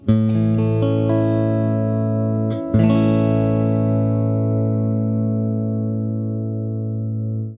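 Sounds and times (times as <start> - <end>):
guitar playing open A major chords: 0.0 - 7.5.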